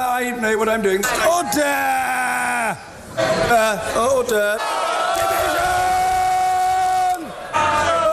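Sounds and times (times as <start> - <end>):
speech: 0.2 - 4.8
members of parliament shouting in a chamber: 4.6 - 8.1.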